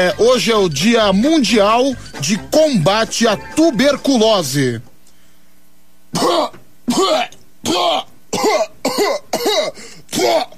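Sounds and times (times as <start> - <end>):
speech: 0.0 - 4.9, 6.1 - 10.5
deliberate harsh coughs demonstrating a tuberculosis cough: 6.1 - 10.5.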